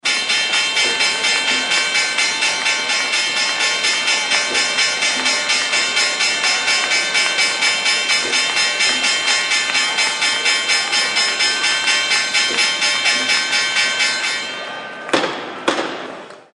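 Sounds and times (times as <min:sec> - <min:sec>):
NYSE stock exchange closing bell ringing: 0:00.1 - 0:15.2.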